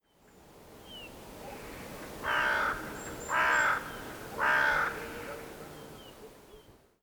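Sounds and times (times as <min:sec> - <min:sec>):
carrion crow Corvus corone cawing: 0:02.3 - 0:05.3.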